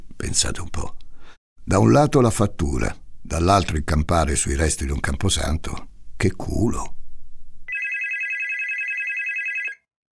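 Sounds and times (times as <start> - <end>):
speech: 0.2 - 1.0, 1.6 - 7.0
telephone bell ringing with a bright buzzing metallic tone: 7.7 - 9.9.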